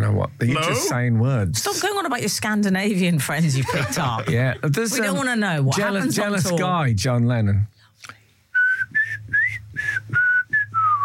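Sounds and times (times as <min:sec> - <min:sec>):
speech: 0:00.2 - 0:08.2
laughter: 0:03.4 - 0:06.7
person whistling a short tune: 0:08.6 - 0:11.0.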